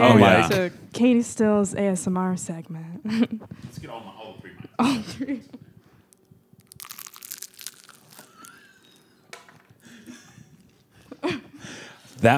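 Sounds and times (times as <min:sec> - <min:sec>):
speech: 0:00.0 - 0:05.6, 0:11.2 - 0:12.3
woman biting into a crisp spring roll: 0:06.1 - 0:11.1
woman chewing a spring roll with soft crunches: 0:06.1 - 0:12.3.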